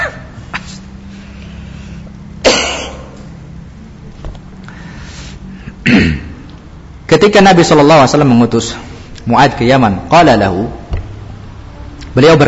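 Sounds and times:
person coughing: 2.4 - 3.2, 5.8 - 6.4
faint throat sound: 5.7 - 6.4
speech: 5.9 - 6.2, 7.1 - 10.8, 12.2 - 12.4
person giving a religious lecture on zakat: 7.1 - 10.9, 12.1 - 12.4.

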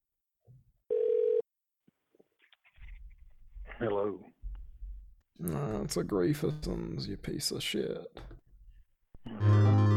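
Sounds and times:
telephone ringing tone through a call line: 0.9 - 1.4
speech: 3.8 - 4.3, 5.4 - 8.4.

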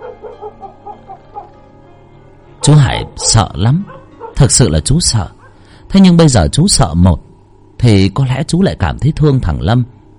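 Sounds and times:
dogs barking at the end of an alley: 0.0 - 1.6, 2.6 - 5.8
constant low hum: 0.0 - 10.1
speech: 2.6 - 7.2, 7.8 - 10.0.

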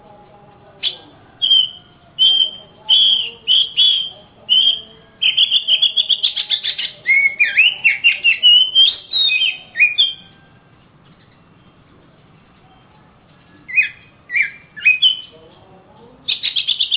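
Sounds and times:
Oriental magpie-robin sweet whistles and slurred notes: 0.8 - 10.5, 13.6 - 15.3, 16.3 - 16.9.

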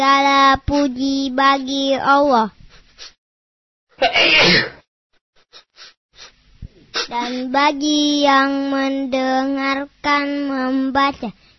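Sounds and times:
speech: 0.0 - 3.1, 4.0 - 4.8, 7.0 - 11.4
loud sharp sneeze: 4.0 - 4.8.

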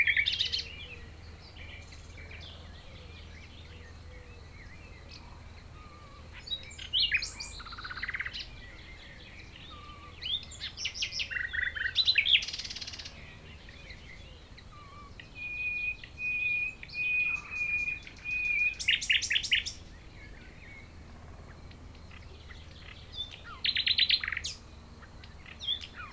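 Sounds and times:
common nightingale singing near Chindrieux in France: 0.0 - 26.1.

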